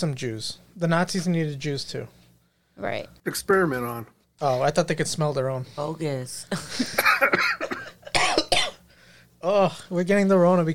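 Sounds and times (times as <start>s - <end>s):
speech: 0.0s - 2.2s, 2.8s - 8.3s, 9.4s - 10.7s
person coughing: 6.8s - 8.9s.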